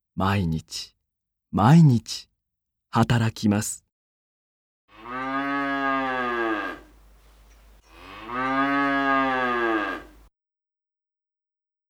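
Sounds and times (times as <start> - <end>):
speech: 0.2 - 2.3, 2.9 - 3.8
cow mooing: 4.9 - 10.3.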